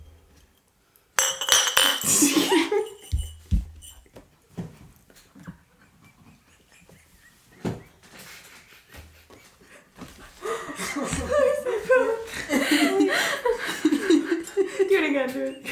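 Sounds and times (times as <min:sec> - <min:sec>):
glasses set down with dull knocks: 0:01.2 - 0:03.3
cocktail glasses clinking in a toast: 0:01.2 - 0:04.1
laughter: 0:05.6 - 0:15.6.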